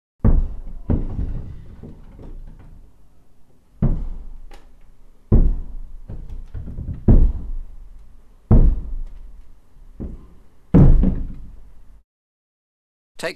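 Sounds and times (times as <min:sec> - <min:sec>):
heavy footsteps thudding: 0:00.2 - 0:02.4, 0:03.8 - 0:04.5, 0:05.2 - 0:12.0.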